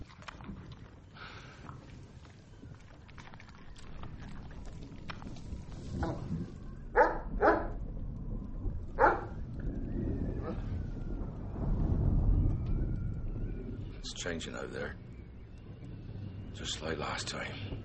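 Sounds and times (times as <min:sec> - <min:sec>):
steady outdoor rumble: 0:00.0 - 0:17.8
dog barking: 0:07.0 - 0:07.7, 0:09.0 - 0:09.3
speech: 0:14.2 - 0:15.1, 0:16.6 - 0:17.8.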